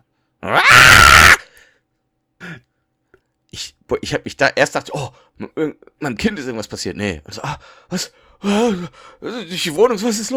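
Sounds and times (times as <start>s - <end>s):
speech: 0.4s - 1.1s, 3.9s - 10.3s
person imitating a cat's scream: 0.4s - 1.4s.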